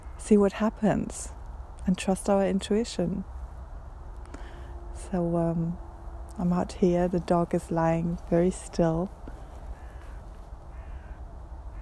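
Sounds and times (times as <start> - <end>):
steady low rumble: 0.0 - 11.7
speech: 0.3 - 3.4, 5.0 - 9.2
crows cawing outdoors: 9.4 - 11.7.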